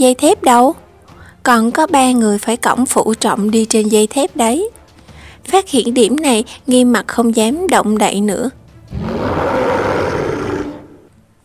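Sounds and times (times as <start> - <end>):
speech: 0.0 - 0.8, 1.4 - 4.8, 5.4 - 9.7
large creature roaring angrily: 8.9 - 11.1.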